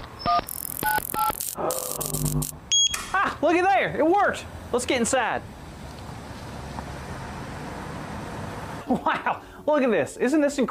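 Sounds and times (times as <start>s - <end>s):
phone keypad beeps entering a phone number: 0.2s - 3.1s
longer noisier electronic buzz: 0.3s - 3.0s
speech: 0.3s - 5.6s, 8.9s - 10.6s.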